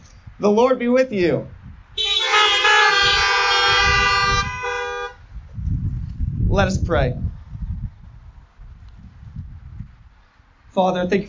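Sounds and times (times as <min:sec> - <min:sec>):
speech: 0:00.4 - 0:01.6, 0:06.6 - 0:07.3, 0:10.8 - 0:11.2
car horns blaring: 0:02.0 - 0:05.3.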